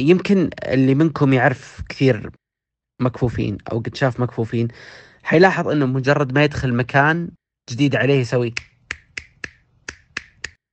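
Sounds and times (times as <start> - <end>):
speech: 0.0 - 2.4, 3.0 - 8.7
crisp finger snaps echoing off the surrounding room: 8.5 - 10.6.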